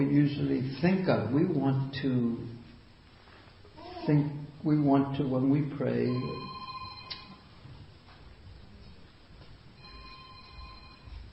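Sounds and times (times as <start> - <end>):
speech: 0.0 - 2.6, 4.0 - 6.5
electronic ringtone mimicking an old bell telephone: 6.1 - 7.4, 9.8 - 11.3.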